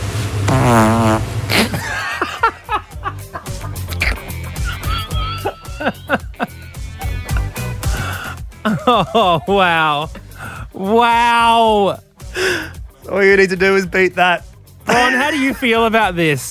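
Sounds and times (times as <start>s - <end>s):
auto-tuned fart sounds playing a bouncy melody: 0.4s - 1.8s, 2.6s - 8.0s
steady thumping beat: 0.4s - 16.2s
speech: 0.5s - 1.3s, 8.9s - 10.2s, 10.8s - 12.0s, 13.1s - 16.4s
laughter: 1.5s - 7.8s, 8.6s - 10.2s, 14.9s - 15.7s.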